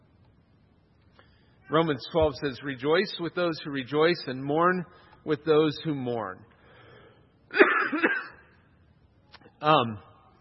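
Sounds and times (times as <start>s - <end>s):
speech: 1.7s - 6.5s, 9.6s - 10.1s
harsh gravelly throat clearing: 7.5s - 8.5s
person coughing: 7.5s - 8.6s.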